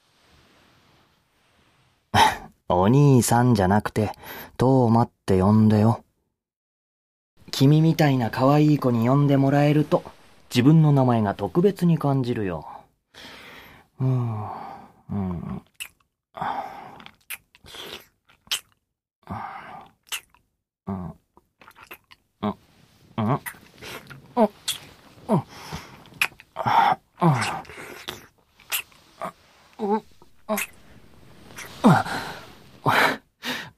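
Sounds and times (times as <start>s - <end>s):
speech: 2.7s - 6.0s, 7.6s - 13.4s, 14.0s - 15.8s, 16.4s - 16.6s, 23.2s - 23.6s, 26.6s - 27.6s
breathy gasps and sighs: 13.1s - 15.7s, 16.3s - 18.1s, 19.2s - 20.0s, 23.2s - 33.7s
wet kissing smacks: 15.8s - 16.0s, 17.2s - 18.8s, 20.0s - 20.4s, 24.6s - 24.9s, 26.1s - 26.5s, 27.4s - 29.0s, 30.5s - 30.8s.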